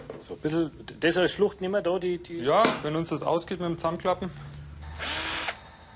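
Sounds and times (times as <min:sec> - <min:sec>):
speech: 0:00.4 - 0:04.4
power drill boring pilot holes into wood: 0:04.8 - 0:05.7.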